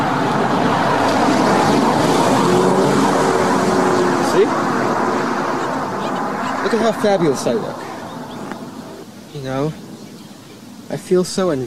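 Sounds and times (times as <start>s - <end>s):
loud steady engine roar from a nearby vehicle: 0.0s - 9.2s
speech: 6.7s - 7.8s, 9.4s - 9.8s, 10.9s - 11.6s.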